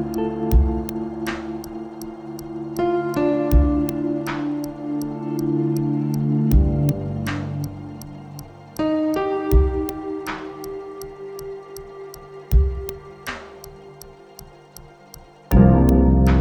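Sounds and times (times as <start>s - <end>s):
clock ticking: 0.0s - 16.3s
music with deep thumping hits and bright shimmering swells: 0.5s - 1.8s, 3.5s - 4.4s, 6.5s - 7.8s, 9.5s - 10.4s, 12.5s - 13.4s, 15.5s - 16.3s.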